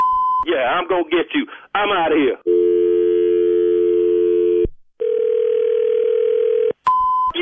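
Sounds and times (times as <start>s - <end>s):
speech: 0.5s - 2.6s
steady telephone tone: 2.4s - 7.3s
telephone dial tone: 2.5s - 6.8s.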